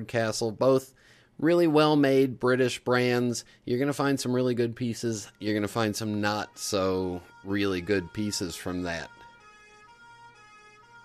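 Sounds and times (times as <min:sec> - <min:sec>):
speech: 0:00.0 - 0:09.2
German police car siren: 0:04.0 - 0:11.0.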